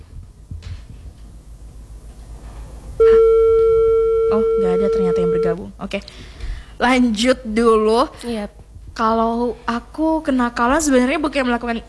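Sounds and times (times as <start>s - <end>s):
quiet low hum: 0.0s - 5.7s
telephone beep as a phone-in call is answered: 3.0s - 5.6s
speech: 4.3s - 11.8s.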